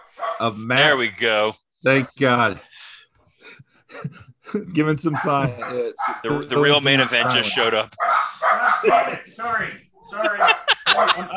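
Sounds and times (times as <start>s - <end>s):
dogs barking: 0.0s - 0.6s, 5.0s - 9.3s, 10.1s - 11.3s
speech: 0.1s - 2.9s, 3.9s - 11.3s
laughter: 8.4s - 11.3s.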